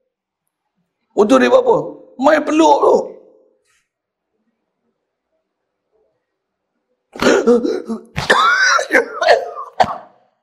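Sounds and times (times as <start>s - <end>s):
speech: 1.2s - 3.1s, 7.5s - 8.2s
man coughing and clearing his throat during a religious lecture: 7.2s - 10.2s.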